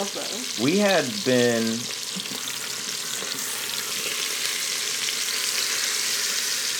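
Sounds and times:
steak sizzling in a hot pan: 0.0 - 6.7
speech: 0.1 - 2.0.

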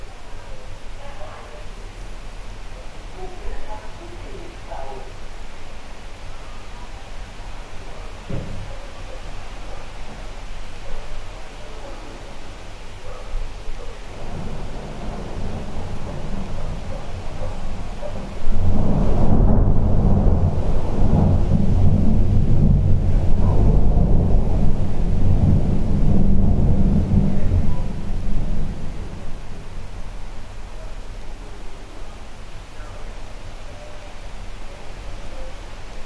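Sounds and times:
windy storm roar: 12.4 - 31.3
thunder cracking during a storm: 14.1 - 30.7.

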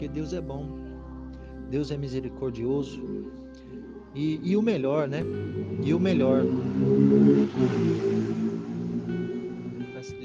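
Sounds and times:
speech: 0.1 - 0.9, 1.7 - 8.4
motorcycle engine passing along the street: 5.2 - 10.2.

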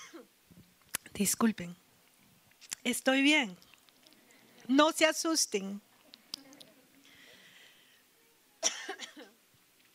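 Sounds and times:
person coughing: 0.0 - 0.3, 8.6 - 9.4
speech: 1.2 - 1.8, 2.8 - 3.7, 4.7 - 5.9.

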